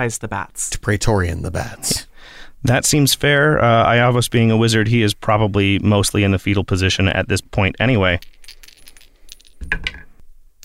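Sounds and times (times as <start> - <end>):
speech: 0.0 - 8.6
metallic chime dice rolling during a tabletop role-playing game: 7.8 - 10.6.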